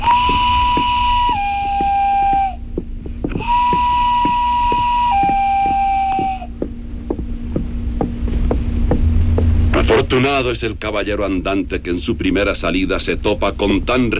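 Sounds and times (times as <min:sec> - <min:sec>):
constant low throbbing: 0:00.0 - 0:10.2
swineherd's reed pipe playing: 0:00.0 - 0:10.2
speech: 0:10.1 - 0:14.1.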